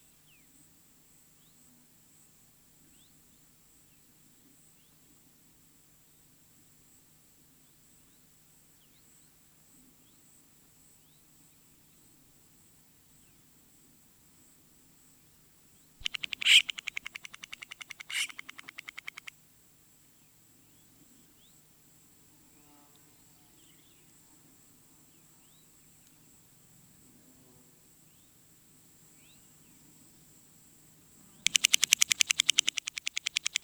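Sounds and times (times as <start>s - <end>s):
Florida scrub jay bill tapping: 16.0s - 19.3s, 31.4s - 33.5s.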